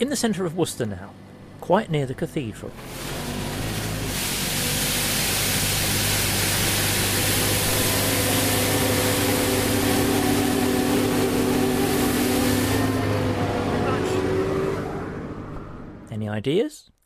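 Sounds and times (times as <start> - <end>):
speech: 0.0 - 3.2, 16.4 - 17.0
motorised road sweeper humming: 2.7 - 16.1
road sweeper brushing hiss: 2.8 - 13.3.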